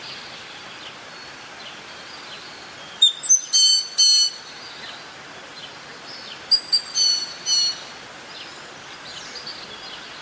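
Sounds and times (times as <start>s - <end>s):
hiss: 0.0s - 10.2s
Greater Antillean grackle calls: 3.0s - 4.5s, 6.5s - 8.0s.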